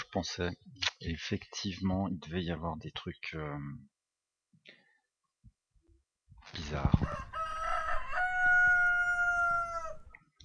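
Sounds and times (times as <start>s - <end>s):
speech: 0.1s - 4.0s, 6.5s - 7.4s
rooster crowing: 7.0s - 10.2s.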